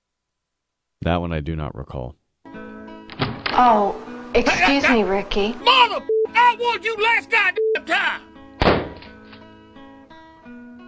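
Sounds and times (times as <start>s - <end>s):
speech: 1.0s - 2.2s, 3.6s - 8.8s
gunshot: 8.6s - 9.1s.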